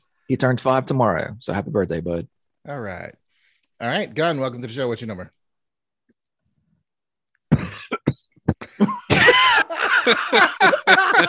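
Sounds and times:
speech: 0.3s - 3.2s, 3.8s - 5.4s, 10.1s - 10.8s
person coughing: 7.5s - 9.6s
person hacking and clearing throat: 7.5s - 9.6s
laughter: 8.7s - 11.2s.

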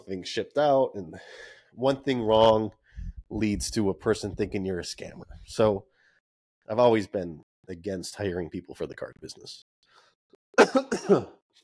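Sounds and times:
speech: 0.1s - 5.9s, 6.7s - 9.7s, 10.6s - 11.4s
person coughing: 10.6s - 11.4s.

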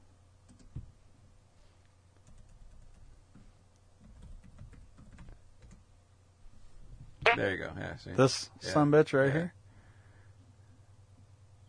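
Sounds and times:
quiet typing on a computer keyboard: 0.5s - 0.8s, 2.2s - 3.4s, 4.0s - 5.8s
speech: 7.4s - 9.6s.

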